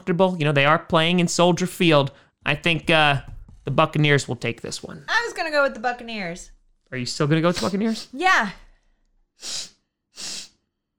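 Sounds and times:
speech: 0.0s - 8.6s, 9.4s - 10.4s
person sniffling: 9.4s - 10.6s.

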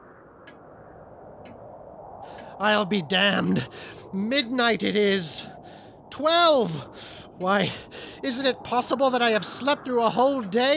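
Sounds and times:
steady low hiss: 0.0s - 10.7s
pocket watch ticking: 2.3s - 10.7s
speech: 2.6s - 10.7s.

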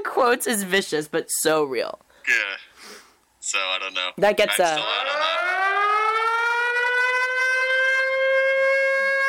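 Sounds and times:
speech: 0.1s - 2.5s, 3.5s - 5.5s
siren wailing outside: 4.8s - 9.2s.

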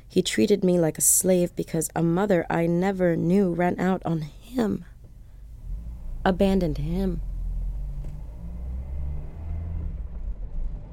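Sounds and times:
speech: 0.1s - 4.9s, 6.2s - 7.3s
car engine rumbling inside a moving vehicle driving at night: 5.0s - 10.9s.

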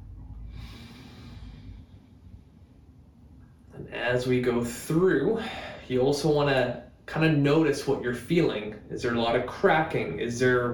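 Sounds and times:
low steady rumble: 0.0s - 10.7s
airy breath exhale during a slow stretching exercise: 0.5s - 2.4s
speech: 4.0s - 10.7s.

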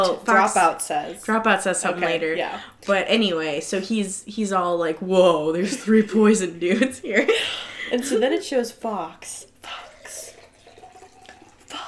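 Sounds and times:
speech: 0.0s - 9.8s
sparkling wine being poured into a glass: 9.7s - 11.8s.

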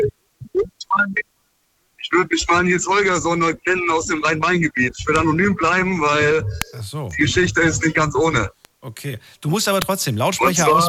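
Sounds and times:
speech: 1.0s - 1.3s, 2.1s - 10.8s
voice over a phone line breaking up: 2.0s - 8.5s, 10.4s - 10.8s.

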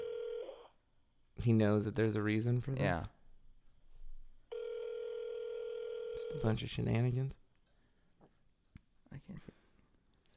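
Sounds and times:
loud steady electronic phone ring tone: 0.0s - 0.7s, 4.5s - 6.5s
speech: 1.4s - 3.2s, 6.2s - 7.4s, 9.1s - 9.6s.

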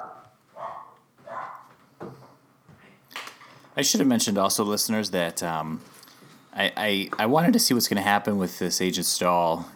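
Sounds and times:
dog barking: 0.0s - 1.7s
speech: 3.8s - 6.0s, 6.6s - 9.7s.

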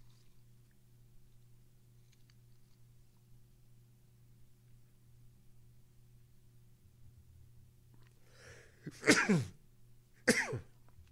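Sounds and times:
stifled sneeze: 8.9s - 9.6s.

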